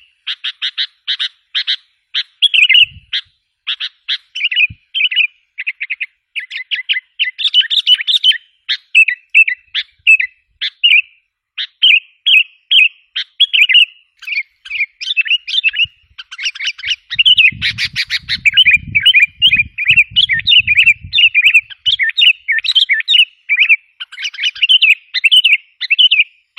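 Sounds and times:
sooty-headed bulbul singing bubbly chirpy phrases: 0.0 - 26.5
low rumbling noise: 17.1 - 21.4.

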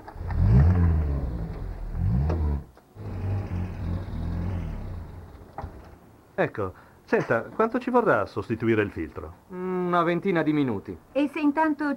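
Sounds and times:
car engine revving as it is driven across a garage forecourt: 0.0 - 5.9
speech: 6.4 - 11.9.

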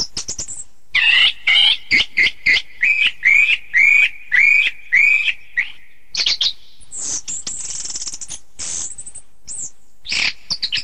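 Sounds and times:
thrush song of rich whistled notes: 0.0 - 10.8
thin high hissing sound: 6.8 - 9.8.

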